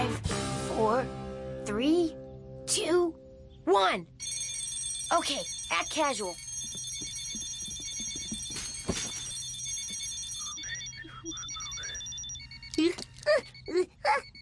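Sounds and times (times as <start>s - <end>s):
speech: 0.8s - 4.2s, 5.1s - 6.8s
several alarm clocks ringing together: 4.2s - 14.4s
beeps: 5.3s - 14.4s.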